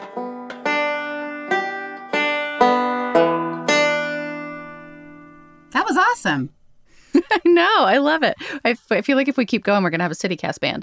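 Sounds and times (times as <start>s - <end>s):
banjo played haltingly by a rusty beginner: 0.0s - 7.4s
speech: 5.9s - 6.6s, 7.3s - 10.8s.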